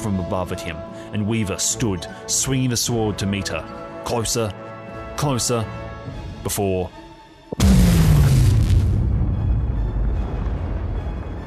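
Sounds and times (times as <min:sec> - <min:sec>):
speech: 0:00.0 - 0:07.0
loud explosion: 0:07.6 - 0:11.4.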